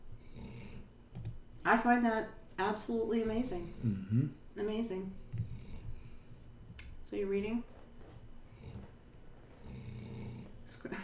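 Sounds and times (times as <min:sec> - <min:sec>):
low rumbling snoring: 0:00.2 - 0:00.9, 0:03.3 - 0:04.4, 0:05.4 - 0:06.3, 0:08.4 - 0:10.7
speech: 0:01.6 - 0:05.2, 0:07.1 - 0:07.7.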